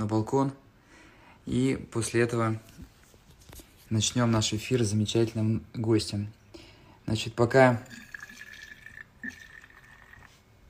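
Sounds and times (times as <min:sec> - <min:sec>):
speech: 0:00.0 - 0:00.6, 0:01.5 - 0:02.8, 0:03.9 - 0:06.4, 0:07.1 - 0:08.0
freshly brewed tea pouring into a teapot: 0:07.5 - 0:10.4.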